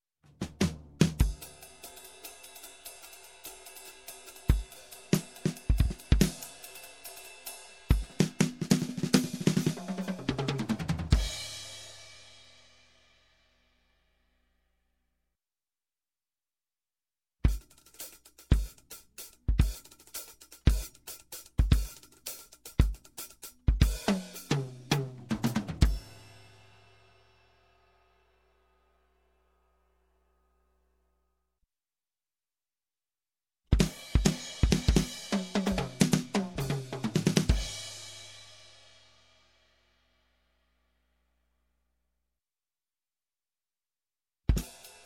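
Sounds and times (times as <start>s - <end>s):
jazz drums bridge: 0.3s - 12.1s, 17.5s - 26.7s, 33.7s - 38.4s, 44.5s - 45.0s.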